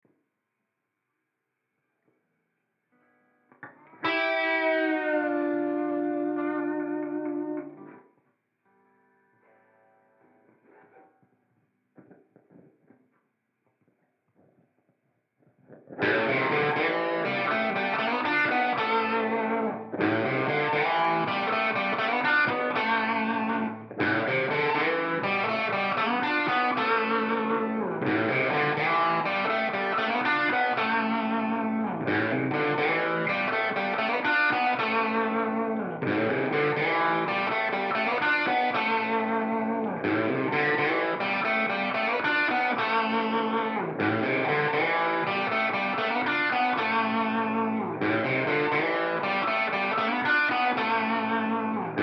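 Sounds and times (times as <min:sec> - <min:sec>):
guitar amplifier with harmonizer and tape delay: 0:03.5 - 0:08.1, 0:15.6 - 0:52.0.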